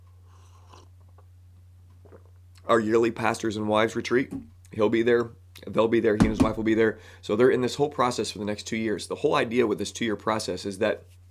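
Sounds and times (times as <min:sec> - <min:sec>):
steady low electrical hum: 0:00.0 - 0:11.2
slurping sip of hot coffee: 0:00.1 - 0:01.3
mouth and swallowing noises: 0:00.3 - 0:02.6
speech: 0:02.1 - 0:11.2.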